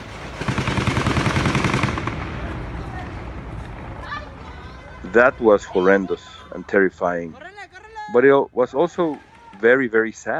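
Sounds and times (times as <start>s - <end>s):
bursts of gunfire near a busy road: 0.0s - 4.0s, 9.0s - 9.9s
rough rumbling din: 0.0s - 10.2s
people shouting: 2.4s - 10.1s
speech: 5.2s - 7.5s, 8.1s - 10.3s.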